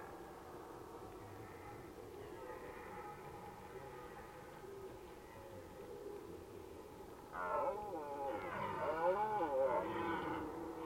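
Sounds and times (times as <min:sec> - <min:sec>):
red deer roaring in Valsolda: 0:07.4 - 0:10.8.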